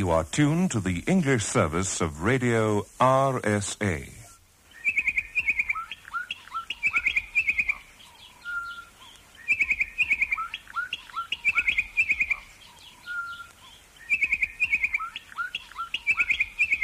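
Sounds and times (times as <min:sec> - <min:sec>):
speech: 0:00.0 - 0:04.2
Bokmakierie giving loud ringing whistled phrases played from a radio station's sign-on: 0:04.7 - 0:16.8.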